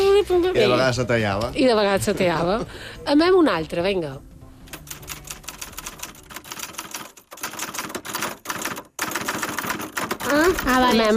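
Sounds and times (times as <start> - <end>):
speech: 0.2 - 4.3, 10.3 - 11.1
typewriter rapid mechanical clacking: 4.7 - 11.1.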